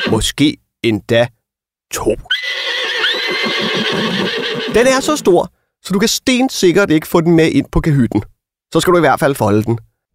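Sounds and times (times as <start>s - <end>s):
horse neighing: 0.0s - 0.3s, 2.3s - 5.3s
speech: 0.1s - 2.7s, 3.3s - 9.9s.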